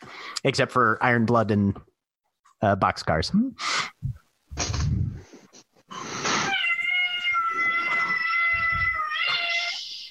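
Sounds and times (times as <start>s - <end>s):
speech: 0.4s - 1.9s, 2.6s - 4.8s
cat meowing for attention in a long loud yowl: 6.5s - 10.0s.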